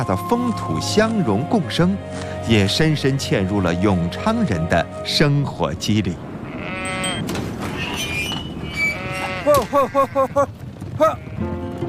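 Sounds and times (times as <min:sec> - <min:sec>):
speech: 0:00.0 - 0:06.3, 0:09.7 - 0:11.5
Yongchang dairy sheep bleating at the foot of the Qilian Mountains: 0:06.4 - 0:07.3, 0:08.7 - 0:11.6
overlapping animal noise: 0:06.4 - 0:10.4.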